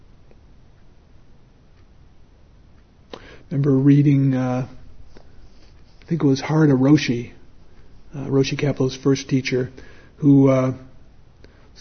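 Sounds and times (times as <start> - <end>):
clock ticking: 0.0 - 11.7
steady low hiss: 0.0 - 11.7
speech: 3.5 - 4.8, 6.1 - 7.4, 8.1 - 10.9.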